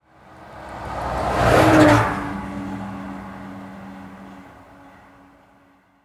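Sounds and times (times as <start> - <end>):
truck passing by: 0.0 - 5.8.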